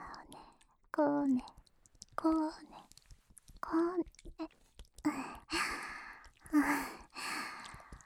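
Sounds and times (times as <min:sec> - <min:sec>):
speech: 0:01.0 - 0:01.6, 0:02.2 - 0:02.8
heavy panting breaths: 0:05.1 - 0:08.0.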